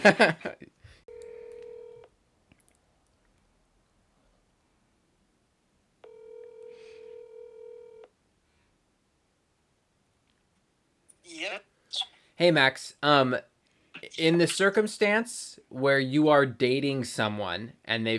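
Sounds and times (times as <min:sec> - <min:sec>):
laughter: 0:00.0 - 0:00.7
speech: 0:00.0 - 0:00.7, 0:11.4 - 0:13.5, 0:14.1 - 0:18.1
buzzy phone ringback tone on an outgoing call: 0:01.1 - 0:02.1, 0:06.0 - 0:08.1.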